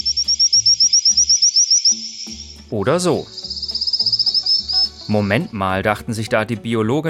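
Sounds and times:
Madagascan Boophis frog high thin whistled call: 0.0 - 5.3
speech: 2.7 - 3.4, 5.1 - 7.0.

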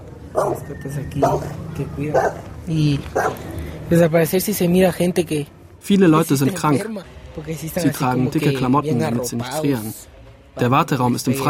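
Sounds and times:
dogs keeping watch at a health centre barking: 0.3 - 2.5, 3.1 - 3.5
speech: 0.5 - 10.0, 10.6 - 11.4.

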